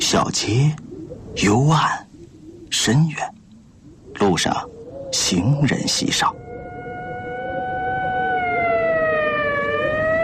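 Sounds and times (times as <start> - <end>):
speech: 0.1 - 0.8, 1.3 - 2.0, 2.7 - 3.3, 4.2 - 6.4
ambulance siren wailing along a quiet street: 6.2 - 10.2.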